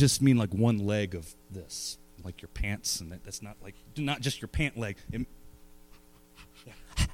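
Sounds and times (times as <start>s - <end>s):
speech: 0.0s - 5.4s, 6.4s - 6.8s
person imitating a dog panting: 6.0s - 7.1s.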